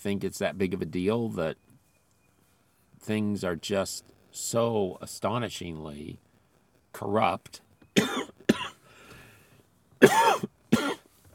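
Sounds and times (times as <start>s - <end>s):
speech: 0.0s - 1.7s, 3.0s - 6.3s, 6.9s - 8.2s
person coughing: 8.0s - 8.8s, 10.0s - 11.1s
faint breathing: 8.8s - 9.8s.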